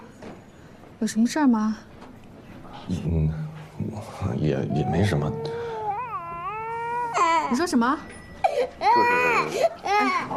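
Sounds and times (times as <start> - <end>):
speech: 1.0 - 1.9, 2.9 - 5.6, 7.5 - 10.3
baby crying: 4.6 - 7.8, 8.4 - 10.3.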